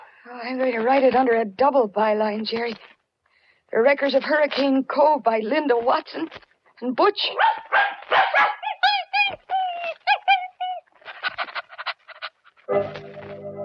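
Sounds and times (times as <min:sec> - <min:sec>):
speech: 0:00.2 - 0:02.9, 0:03.7 - 0:08.2, 0:12.7 - 0:13.1
dog barking and yapping in high-pitched bursts: 0:07.2 - 0:12.7.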